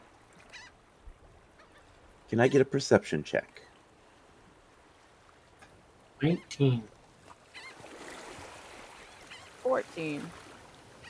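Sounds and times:
distant seagull cry: 0:00.4 - 0:00.8, 0:01.5 - 0:02.6, 0:07.4 - 0:07.9, 0:08.9 - 0:10.0
speech: 0:02.3 - 0:03.6, 0:06.2 - 0:06.9, 0:09.8 - 0:10.4.

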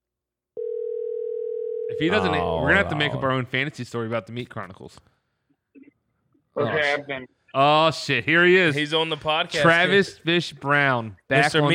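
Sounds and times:
mid-pitched electronic outgoing phone call ringing tone: 0:00.6 - 0:02.3
speech: 0:01.9 - 0:05.1, 0:06.6 - 0:11.7.

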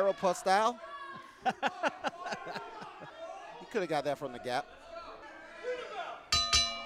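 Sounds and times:
speech: 0:00.0 - 0:02.8, 0:03.7 - 0:04.8
laughter: 0:01.2 - 0:03.7
wrestling ring bell clangs: 0:06.3 - 0:06.8.

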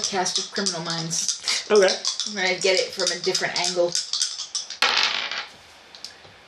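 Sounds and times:
speech: 0:00.1 - 0:04.1
dice rolling on a table: 0:01.3 - 0:05.6.

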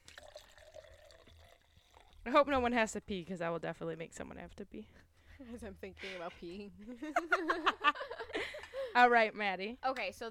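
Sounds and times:
wine pouring into a glass: 0:00.0 - 0:02.4
speech: 0:02.3 - 0:10.3
laughter: 0:06.9 - 0:08.9.

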